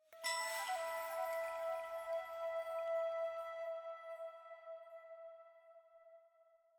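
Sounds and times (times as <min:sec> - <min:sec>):
chime in E: 0:00.1 - 0:03.8
flute jingle: 0:00.2 - 0:04.3.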